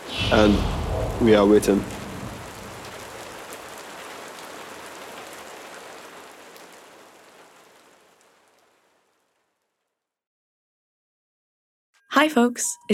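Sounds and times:
steady rain falling: 0.0 - 9.8
speech: 0.3 - 1.9, 12.2 - 12.9
raindrops pattering on a surface: 1.3 - 9.6.

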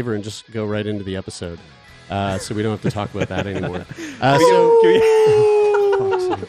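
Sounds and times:
speech: 0.0 - 5.6
laughter: 2.3 - 6.4
person imitating a wolf howl: 4.3 - 6.4.

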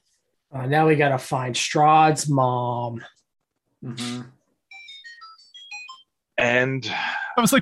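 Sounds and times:
speech: 0.5 - 3.2, 3.8 - 4.4, 6.4 - 7.5
phone ringtone playing a video-game style jingle: 4.7 - 6.2.

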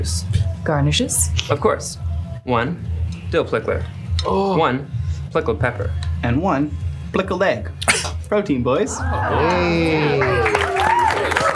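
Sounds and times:
speech: 0.0 - 10.5
people cheering: 8.8 - 11.5
crowd applauding: 9.0 - 11.5.

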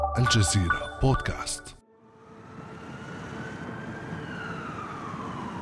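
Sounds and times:
speech: 0.2 - 1.7
white ambulance siren wailing: 1.9 - 5.5.

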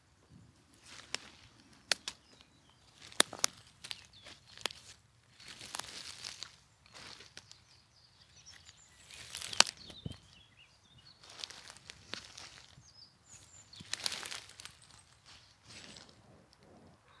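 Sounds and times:
brief bird chirps: 0.0 - 17.1
crunching footsteps in a forest: 0.2 - 16.7
sharp twig snaps: 0.8 - 7.6, 8.5 - 10.2, 11.2 - 12.8, 13.4 - 16.2.

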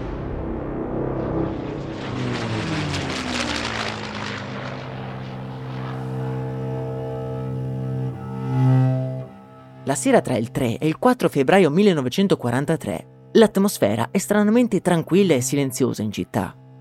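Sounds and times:
enemy propeller warplane roaring overhead over Turin during the Second World War: 0.0 - 10.6
speech: 9.9 - 16.6.

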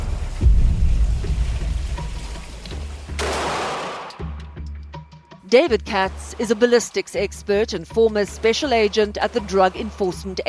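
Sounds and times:
long low rumbling echo of shotgun blast: 0.0 - 3.7
12-gauge shotgun blast: 3.2 - 4.2
speech: 5.5 - 10.4.

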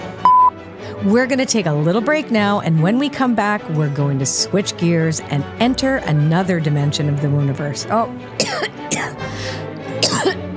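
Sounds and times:
speech: 1.0 - 9.2
person coughing after accidentally inhaling a midge: 8.4 - 9.2, 10.0 - 10.4
rough gasp: 9.3 - 9.7.

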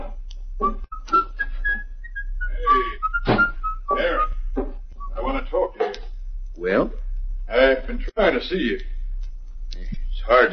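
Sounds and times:
low steady hum: 0.0 - 10.5
man whistling a tune while walking: 0.6 - 5.2
speech: 8.0 - 9.0, 10.3 - 10.5.

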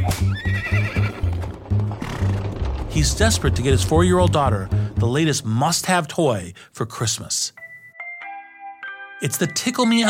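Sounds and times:
horse pulling a hansom cab neighing: 0.2 - 2.4
horse hooves clip-clopping on 57th Street in New York: 0.6 - 4.0
speech: 3.0 - 7.6, 9.2 - 10.0.

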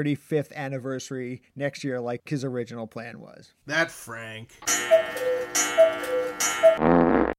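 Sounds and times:
speech: 0.0 - 5.2, 5.8 - 7.2
message notification electronic chime: 4.6 - 6.8
short loud buzzy blare: 5.0 - 7.3.

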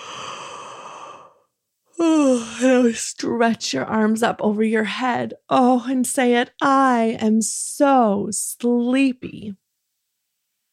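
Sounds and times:
exaggerated pretend yawn: 0.0 - 1.4
speech: 2.8 - 9.6.

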